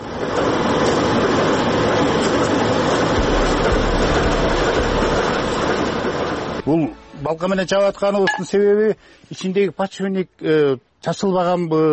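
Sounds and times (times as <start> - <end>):
freight train arriving at railway station to haul coal: 0.0 - 8.0
speech: 6.7 - 11.9.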